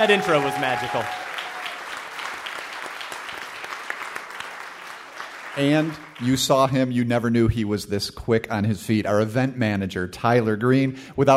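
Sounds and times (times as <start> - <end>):
speech: 0.0 - 1.3, 5.6 - 11.3
live audience applause: 0.0 - 6.7.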